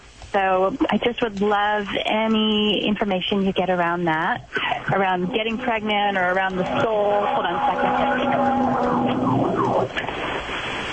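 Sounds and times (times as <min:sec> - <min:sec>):
low rumble: 0:00.0 - 0:10.9
speech: 0:00.4 - 0:10.4
fire engine siren passing: 0:05.2 - 0:10.1.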